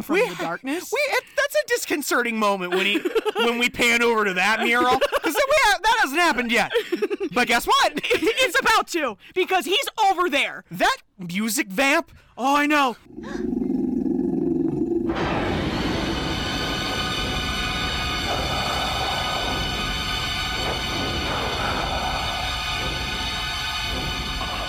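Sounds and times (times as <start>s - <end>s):
speech: 0.0s - 13.6s
laughter: 2.7s - 8.6s
wolf-like creature puppet growling in a film: 13.1s - 24.6s.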